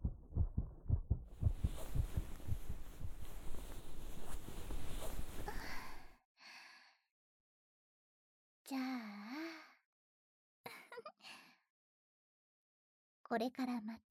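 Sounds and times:
quick deep heartbeat thumping: 0.0s - 4.4s
soft rustling: 1.3s - 6.1s
speech: 13.3s - 14.0s.

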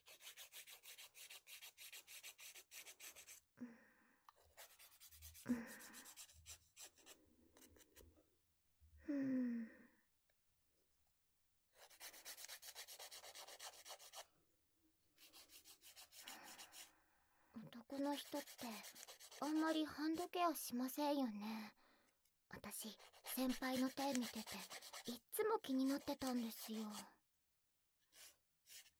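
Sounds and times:
nail file filing freshly clipped fingernails: 0.0s - 3.4s, 4.5s - 8.0s, 11.8s - 14.2s, 15.2s - 16.7s, 17.9s - 19.8s, 23.0s - 25.2s, 25.8s - 27.0s
speech: 5.5s - 6.0s, 18.1s - 21.8s, 22.8s - 27.2s.

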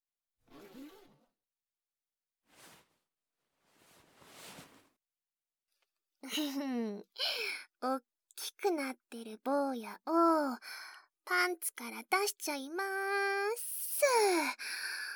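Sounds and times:
zipper rasping open: 0.5s - 1.3s
breathy voice: 6.2s - 7.8s, 10.2s - 11.0s, 14.0s - 15.1s
speech: 6.3s - 15.0s.

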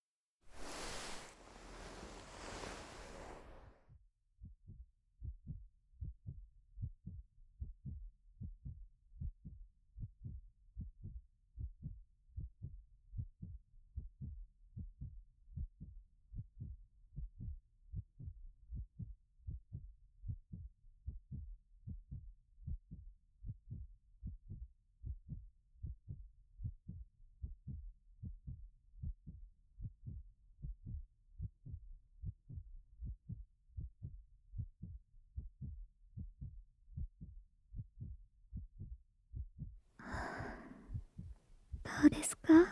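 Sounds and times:
rustling broadband noise: 0.5s - 3.7s
human heartbeat through the chest: 4.6s - 42.7s
speech: 42.0s - 42.7s.

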